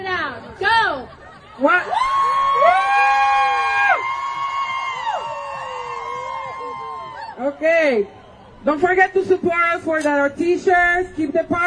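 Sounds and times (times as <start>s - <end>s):
speech: 0.5s - 2.8s, 7.4s - 11.6s
large crowd yelling and cheering at a rally: 1.4s - 9.3s.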